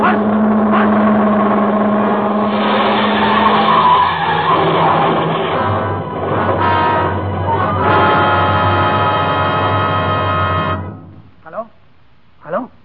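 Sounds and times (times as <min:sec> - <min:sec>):
roaring car engine drone: 0:00.0 - 0:11.3
car brakes squealing and tires skidding through a curve: 0:02.2 - 0:10.8.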